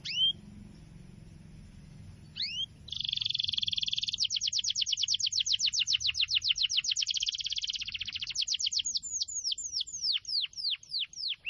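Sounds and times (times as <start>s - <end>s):
canary singing: 0.0s - 1.0s, 1.7s - 11.4s.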